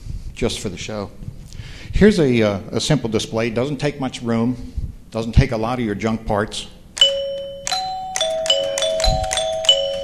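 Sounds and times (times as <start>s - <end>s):
speech: 0.4s - 1.3s, 1.9s - 6.8s
motor-driven mechanical chime box ringing bell-like tones: 7.0s - 10.0s.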